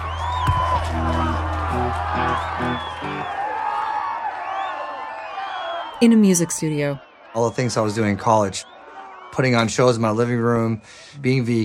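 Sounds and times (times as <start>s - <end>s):
scattered whoops and high shouts: 0.0s - 6.0s
large crowd cheering: 0.0s - 11.6s
speech: 6.0s - 8.7s, 9.3s - 11.6s.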